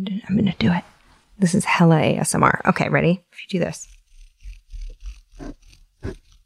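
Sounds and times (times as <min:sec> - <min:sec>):
speech: 0:00.0 - 0:04.0, 0:05.4 - 0:06.2
regular wooden pencil with non-round sides rubbed quickly between palms: 0:03.6 - 0:06.4.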